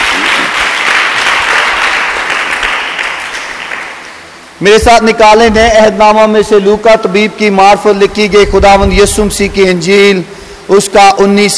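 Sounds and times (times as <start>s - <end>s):
church congregation applauding during a worship service: 0.0s - 4.3s
speech: 4.6s - 11.5s.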